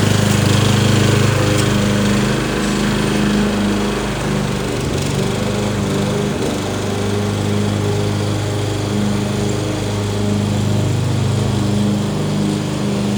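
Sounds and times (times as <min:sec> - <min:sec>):
lawn mower engine droning in a backyard in Phoenix Arizona: 0:00.0 - 0:13.1.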